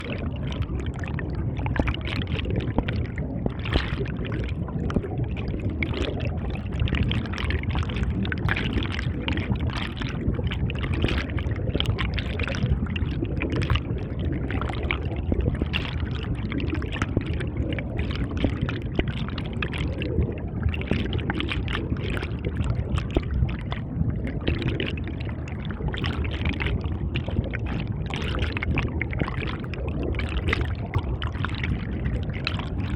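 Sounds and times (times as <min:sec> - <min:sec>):
deep underwater mountain river flow: 0:00.0 - 0:32.9.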